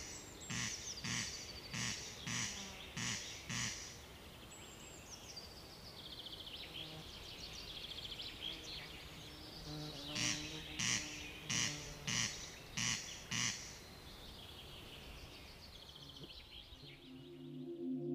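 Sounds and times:
corncrake rasping call: 0.0 - 4.0, 10.2 - 13.8
faint twittering birdsong: 0.0 - 18.1.

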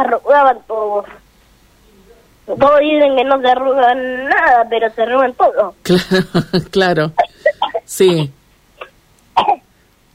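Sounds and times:
speech: 0.0 - 1.2, 2.5 - 7.2, 7.9 - 8.4, 9.4 - 9.6
laughter: 5.9 - 6.8
child coughing: 7.2 - 7.9, 8.8 - 9.7.

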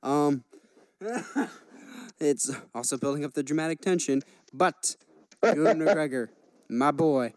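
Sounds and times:
speech: 0.3 - 1.6, 2.2 - 7.3
hoarse coughs: 1.0 - 1.7
laughter: 1.0 - 2.1, 5.4 - 6.3.

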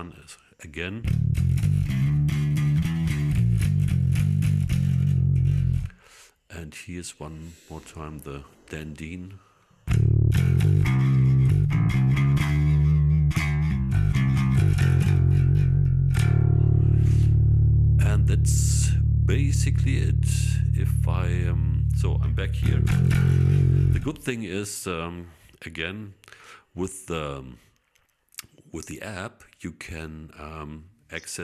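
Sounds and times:
speech: 0.0 - 1.8, 6.6 - 9.5, 18.3 - 27.7, 28.7 - 31.4
compressed bass guitar through an amp profiler with slight distortion: 1.0 - 5.9, 9.9 - 24.2.

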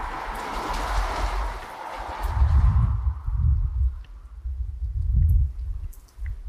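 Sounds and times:
heavy rain falling: 0.0 - 2.4
deep buffeting gusts of wind: 0.0 - 6.4.

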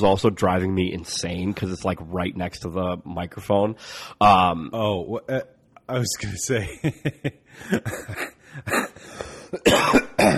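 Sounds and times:
speech: 0.0 - 10.3
laughter: 6.5 - 9.1
person coughing with hacking coughs: 7.7 - 10.3
throat clearing: 8.1 - 10.3.

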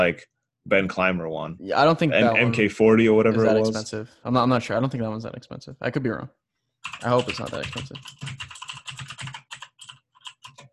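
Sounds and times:
speech: 0.0 - 9.0
computer keyboard typing: 6.8 - 10.7.

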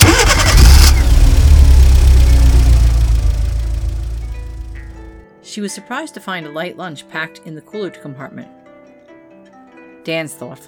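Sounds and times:
car engine cranking, starting and idling: 0.0 - 5.1
speech: 5.6 - 8.6, 10.0 - 10.6.

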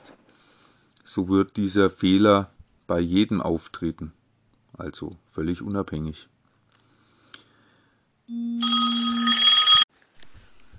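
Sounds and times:
speech: 1.2 - 4.2, 4.8 - 6.3, 8.3 - 9.2
phone electronic ringtone with buzzy multi-tone chime: 8.3 - 9.9.

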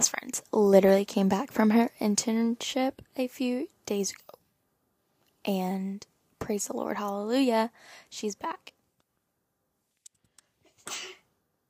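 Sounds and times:
speech: 0.6 - 4.2, 5.4 - 8.8
person sneezing: 10.8 - 11.3.

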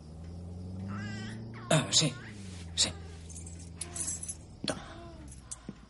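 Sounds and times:
faint low hum: 0.0 - 5.8
speech: 1.7 - 2.2, 2.8 - 3.0
car wash keys jangling as they are handed over: 3.2 - 5.7.

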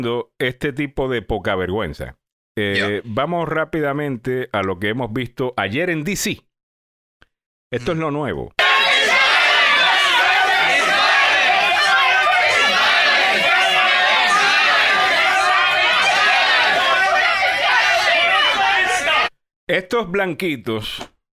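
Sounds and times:
speech: 0.0 - 6.5, 7.7 - 8.6, 19.7 - 21.2
dense protest crowd shouting: 8.6 - 19.3.

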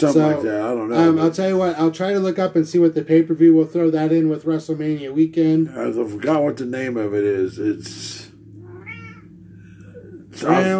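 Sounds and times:
speech: 0.0 - 8.3, 10.4 - 10.7
steady low hum: 0.0 - 10.7
cat meowing: 8.6 - 9.4.

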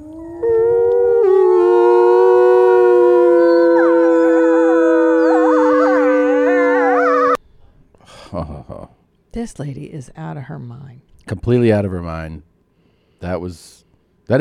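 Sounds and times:
pack of wolves howling in chorus: 0.0 - 7.4
speech: 9.4 - 12.5, 13.2 - 14.3.

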